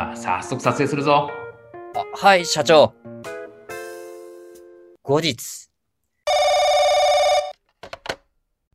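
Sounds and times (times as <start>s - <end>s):
speech: 0.2s - 3.1s, 5.1s - 5.6s
telephone ringing with electronic trill: 6.3s - 7.6s.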